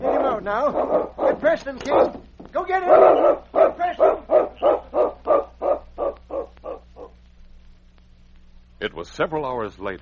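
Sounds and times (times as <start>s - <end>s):
dog barking at the door of a constable's cabin: 0.0s - 2.2s, 2.8s - 7.2s
faint low hum: 0.0s - 10.0s
speech: 0.4s - 4.2s, 9.0s - 10.0s.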